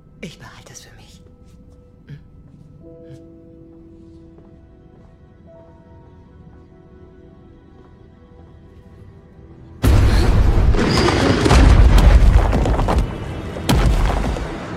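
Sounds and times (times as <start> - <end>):
speech: 0.2 - 1.0
glacier ice breaking apart after being blasted: 9.8 - 14.6.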